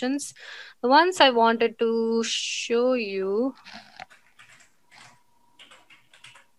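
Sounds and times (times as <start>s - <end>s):
speech: 0.0s - 4.0s
typing on a computer keyboard: 3.6s - 6.5s.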